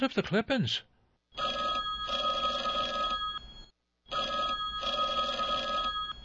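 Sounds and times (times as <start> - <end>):
speech: 0.0 - 1.5
telephone ringing in a detective agency office: 1.4 - 6.2.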